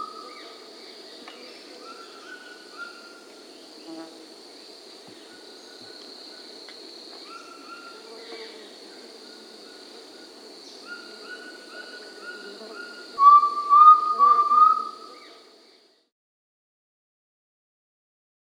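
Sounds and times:
high insect drone in the Peruvian Amazon: 0.0s - 16.0s
Undulated Tinamou Crypturellus undulatus whistling in the Peruvian Amazon: 13.2s - 15.0s.

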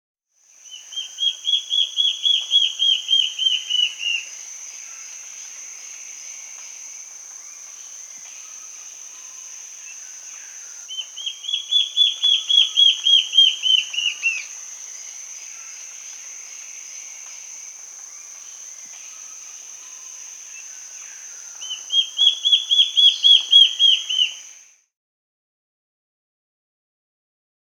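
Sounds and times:
Black-faced Antbird Myrmoborus myotherinus calling in Peru: 0.6s - 6.1s, 8.4s - 14.6s, 20.6s - 24.6s.

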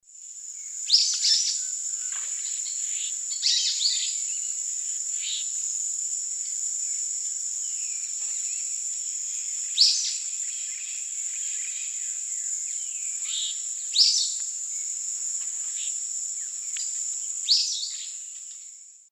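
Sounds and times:
Myiodynastes luteiventris song or calls in Eastern Lowlands of South America: 0.6s - 4.6s, 9.3s - 14.9s, 16.8s - 18.7s.

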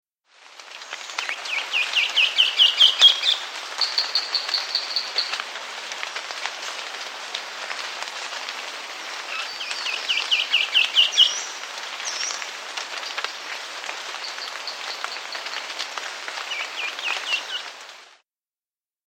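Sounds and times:
Rufous Gnateater calling in South America: 1.2s - 5.4s, 9.2s - 11.5s, 14.1s - 15.8s, 16.4s - 17.7s.

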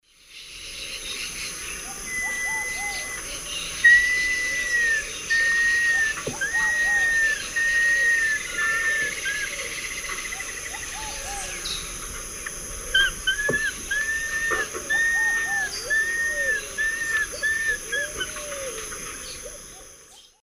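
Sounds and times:
Nasica longirostris song and call in the Eastern Lowlands of South America: 0.1s - 20.4s.

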